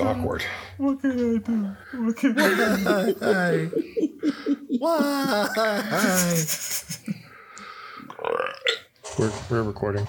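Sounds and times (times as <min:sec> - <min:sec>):
speech: 0:00.0 - 0:06.9, 0:09.2 - 0:10.0
laughter: 0:02.2 - 0:07.3
long throaty gravelly belch: 0:08.1 - 0:08.9.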